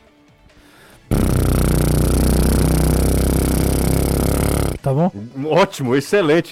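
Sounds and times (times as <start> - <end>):
small 50cc motorcycle engine running: 1.1 - 4.8
speech: 4.9 - 6.5.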